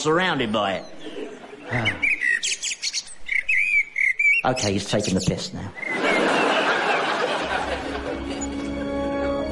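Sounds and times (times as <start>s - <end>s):
speech: 0.0s - 2.6s, 4.4s - 6.0s
blackbird chirping while chased by a swooping predator: 0.0s - 6.2s
laughter: 1.0s - 2.1s, 5.8s - 9.4s.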